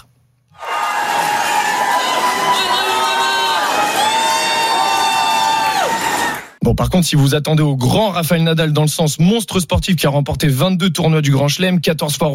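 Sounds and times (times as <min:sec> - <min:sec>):
large crowd in the streets of Brisbane cheering and shouting: 0:00.6 - 0:06.6
speech: 0:06.7 - 0:12.3.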